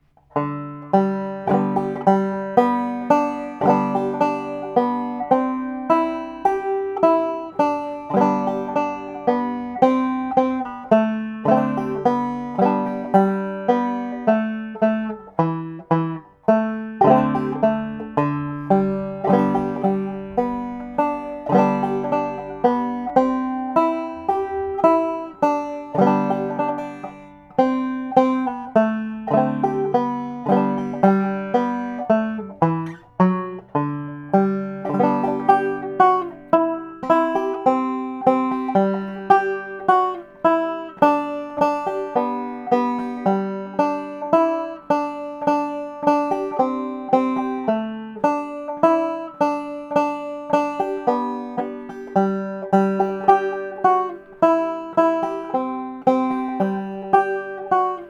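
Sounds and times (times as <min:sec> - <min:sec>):
banjo: 0:00.0 - 0:58.0.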